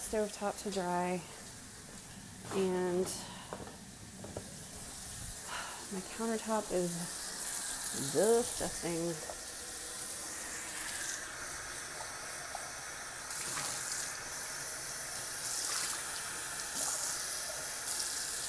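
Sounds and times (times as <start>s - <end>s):
speech: 0.1s - 1.4s, 2.5s - 3.7s, 5.9s - 7.2s, 7.9s - 9.4s
water splashing and trickling from glasses into a sink: 6.0s - 18.4s.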